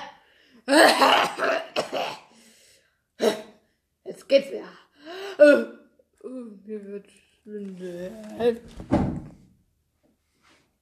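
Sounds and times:
speech: 0:00.7 - 0:01.2, 0:04.3 - 0:04.8, 0:05.4 - 0:05.7, 0:06.7 - 0:09.2
person giving harsh rasping coughs: 0:00.7 - 0:02.4, 0:03.2 - 0:03.6.

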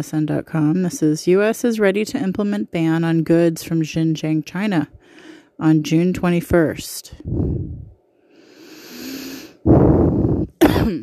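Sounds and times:
speech: 0:00.0 - 0:07.8, 0:09.6 - 0:11.0
long raspy intake of breath by pollen-allergic person: 0:07.3 - 0:10.6
person allergic to pollen coughing harshly: 0:10.5 - 0:11.0.

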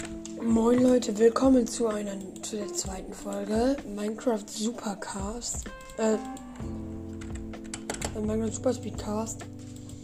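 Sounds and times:
rapid clicky computer keyboard typing while playing games on a PC: 0:00.0 - 0:04.2, 0:05.2 - 0:08.6
speech: 0:00.4 - 0:06.8, 0:08.2 - 0:09.7.

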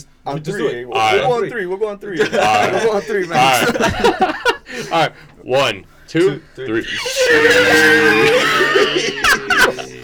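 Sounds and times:
speech: 0:00.0 - 0:09.2
laughter: 0:02.1 - 0:05.3, 0:06.8 - 0:10.0
strained vocal screech: 0:06.8 - 0:09.4.

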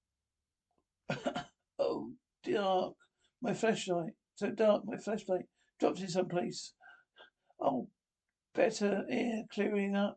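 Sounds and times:
heavy raspy coughing fits: 0:01.1 - 0:01.6
speech: 0:02.6 - 0:06.8, 0:07.6 - 0:10.1.

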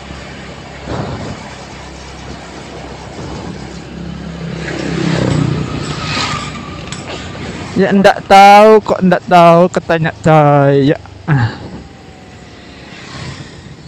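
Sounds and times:
motorcycle passing and revving: 0:00.0 - 0:08.3, 0:11.1 - 0:13.8
steady rumbling engine drone with mechanical rattling: 0:00.0 - 0:13.8
speech: 0:07.8 - 0:11.6.

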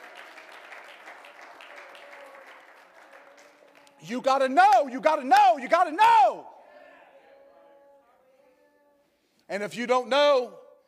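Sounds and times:
audience clapping hands: 0:00.0 - 0:05.6
speech: 0:04.0 - 0:06.5, 0:09.5 - 0:10.6.

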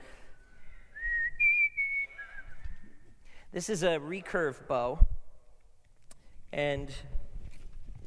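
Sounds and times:
people whistling a tune in a church: 0:00.7 - 0:03.0
speech: 0:03.5 - 0:05.1, 0:06.6 - 0:07.2.

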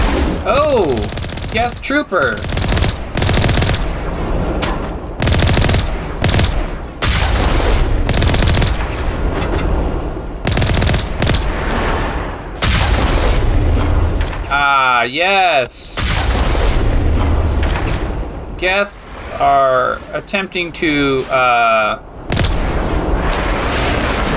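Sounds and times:
video game gunfire: 0:00.0 - 0:09.2, 0:10.4 - 0:11.9, 0:22.3 - 0:23.0
video game tank cannon blasts: 0:00.0 - 0:14.5, 0:16.0 - 0:18.5, 0:22.3 - 0:24.3
speech: 0:00.4 - 0:02.6, 0:15.0 - 0:15.9, 0:18.6 - 0:22.1.

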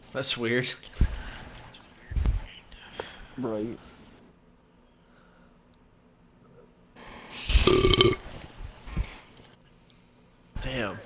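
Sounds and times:
speech: 0:00.1 - 0:01.1, 0:03.4 - 0:03.9
loud rattling burp after drinking an energy drink: 0:07.6 - 0:08.2.

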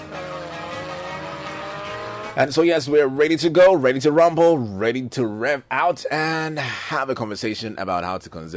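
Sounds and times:
rickety car's engine roaring as it speeds past: 0:00.0 - 0:03.8
speech: 0:02.4 - 0:08.5.

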